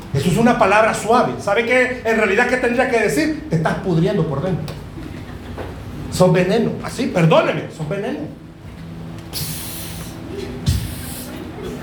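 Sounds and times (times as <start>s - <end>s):
speech: 0.2s - 4.8s, 6.1s - 8.4s
low murmur: 4.2s - 7.2s, 7.8s - 11.8s
voice imitating a snake's hiss: 9.4s - 11.5s.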